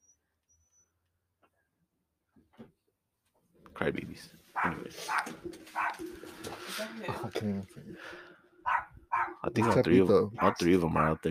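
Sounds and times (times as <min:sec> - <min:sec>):
speech: 0:03.8 - 0:08.3, 0:09.4 - 0:11.2
dog barking: 0:04.6 - 0:06.1, 0:08.6 - 0:11.2.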